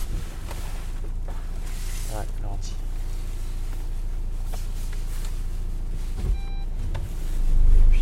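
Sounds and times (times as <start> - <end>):
car engine and road noise inside the vehicle: 0.0 - 7.9
car unbuckled-seatbelt warning chime: 6.3 - 6.7.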